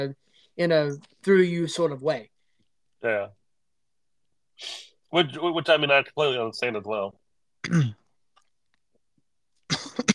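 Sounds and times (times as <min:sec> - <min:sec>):
speech: 0:00.0 - 0:02.3, 0:03.0 - 0:03.4, 0:04.6 - 0:08.0
person coughing: 0:07.6 - 0:08.0, 0:09.7 - 0:10.1.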